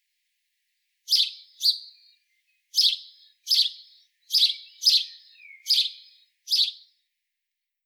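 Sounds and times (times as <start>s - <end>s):
house sparrow chirping: 1.1s - 6.9s.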